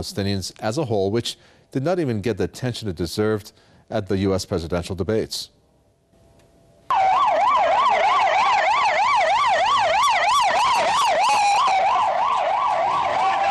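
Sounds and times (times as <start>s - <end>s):
speech: 0.0s - 5.6s
emergency vehicle sirens wailing: 6.9s - 13.5s.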